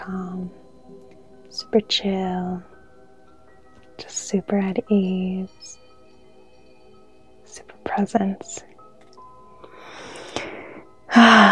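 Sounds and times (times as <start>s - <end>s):
speech: 0.0s - 2.7s, 4.0s - 5.8s, 7.6s - 8.7s, 11.1s - 11.5s
person deep breathing while settling into calm: 9.6s - 11.5s.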